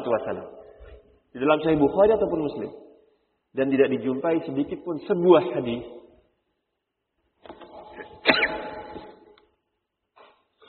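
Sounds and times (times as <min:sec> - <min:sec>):
speech: 0:00.1 - 0:00.6, 0:01.3 - 0:02.8, 0:03.5 - 0:06.0
sneeze: 0:08.0 - 0:09.1.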